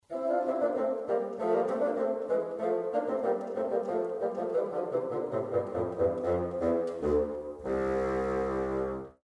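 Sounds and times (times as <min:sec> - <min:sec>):
bassoons: 0:00.1 - 0:09.2.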